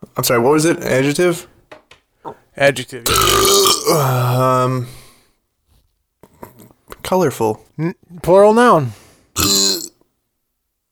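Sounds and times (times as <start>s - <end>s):
speech: 0.2s - 1.6s, 2.2s - 5.0s, 7.0s - 9.7s
loud rough burp: 3.1s - 4.6s, 9.4s - 10.0s.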